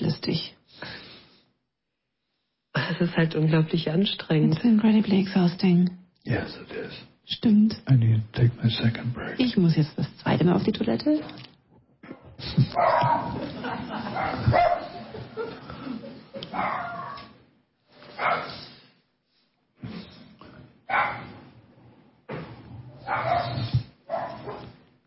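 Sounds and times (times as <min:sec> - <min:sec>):
speech: 0:03.0 - 0:11.5, 0:12.4 - 0:17.0, 0:18.2 - 0:18.6
dogs barking, yipping and whimpering: 0:12.0 - 0:15.5, 0:16.4 - 0:17.4, 0:18.1 - 0:18.7, 0:20.9 - 0:21.5, 0:22.9 - 0:24.8
laughter: 0:12.4 - 0:16.6.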